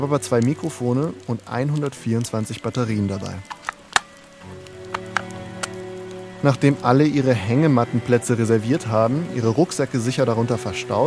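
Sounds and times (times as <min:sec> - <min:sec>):
speech: 0:00.0 - 0:03.5, 0:06.4 - 0:11.0
pouring rain at a harbour: 0:00.0 - 0:11.0
loud drops striking a hard surface: 0:03.4 - 0:04.2, 0:04.9 - 0:05.8.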